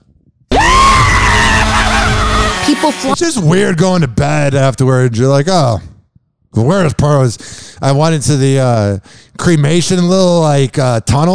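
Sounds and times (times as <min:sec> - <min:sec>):
person screaming: 0:00.5 - 0:03.2
speech: 0:02.9 - 0:05.9, 0:06.5 - 0:11.3.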